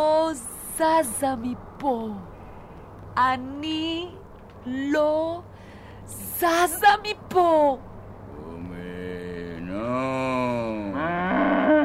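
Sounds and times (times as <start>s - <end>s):
speech: 0.0s - 2.3s, 3.2s - 5.5s, 6.1s - 7.9s, 9.8s - 10.4s
cow mooing: 9.7s - 11.8s.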